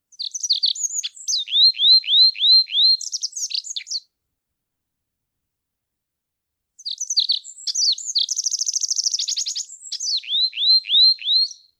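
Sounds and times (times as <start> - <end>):
olive-backed pipit song: 0.1 - 4.0, 6.8 - 11.7.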